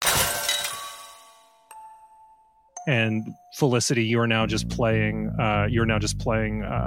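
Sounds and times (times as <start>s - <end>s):
music box shattered by a fired bullet: 0.0s - 1.8s
speech: 2.9s - 6.8s.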